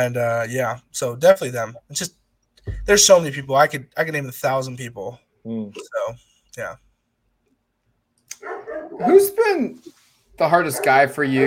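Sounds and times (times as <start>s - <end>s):
speech: 0.0s - 6.9s, 8.4s - 11.4s
dog barking: 8.4s - 9.3s, 10.6s - 11.4s.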